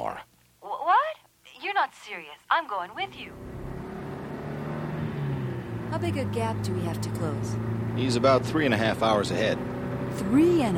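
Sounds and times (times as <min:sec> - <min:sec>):
speech: 0:01.9 - 0:03.6, 0:05.9 - 0:10.7
rental car engine droning: 0:03.1 - 0:10.7.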